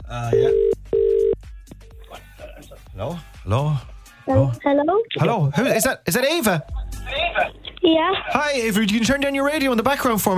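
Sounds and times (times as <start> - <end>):
speech: 0.1 - 0.7, 3.0 - 10.3
ringback tone of an outgoing telephone call: 0.3 - 1.4.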